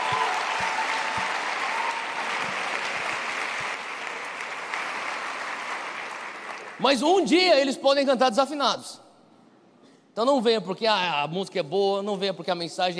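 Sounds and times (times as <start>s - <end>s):
audience applause for worship team: 0.0s - 6.8s
speech: 6.8s - 9.0s, 10.2s - 12.9s.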